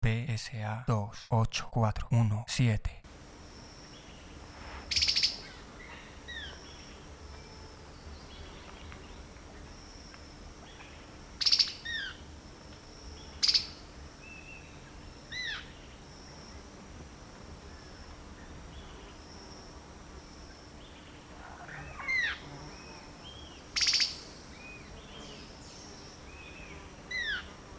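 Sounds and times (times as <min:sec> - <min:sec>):
speech: 0:00.0 - 0:03.0
quiet hum: 0:00.0 - 0:27.7
faint insect buzz: 0:03.1 - 0:27.7
bird chirping near a waterlogged pool by a stream channel: 0:03.8 - 0:09.2, 0:10.6 - 0:12.2, 0:13.2 - 0:16.0, 0:20.8 - 0:27.5.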